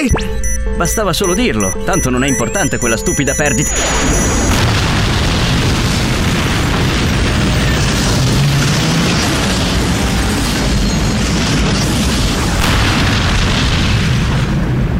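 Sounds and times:
speech: 0.0 - 4.4
atomic explosion roar: 3.8 - 14.9.

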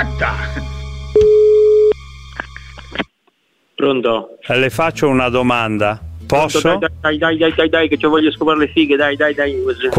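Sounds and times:
speech: 0.0 - 0.7, 3.8 - 9.9
steady telephone tone after a dropped call: 1.2 - 2.0.

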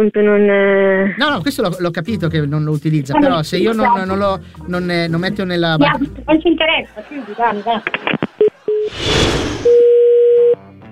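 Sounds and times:
speech: 0.0 - 8.2, 8.8 - 10.0
laughter: 6.8 - 8.7
short telephone line beeps after a dropped call: 8.4 - 8.9, 9.7 - 10.6
loud steady telephone line tone after a dropped call: 9.7 - 10.6.

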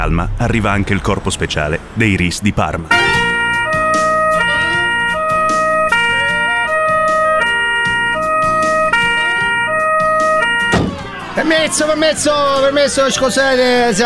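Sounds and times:
speech: 0.0 - 3.2, 11.4 - 14.0
loud alarm siren: 2.9 - 11.1.

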